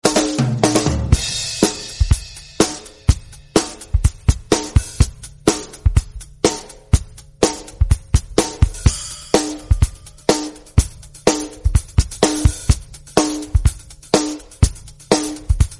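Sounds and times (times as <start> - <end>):
drum kit ringtone: 0.0 - 15.7.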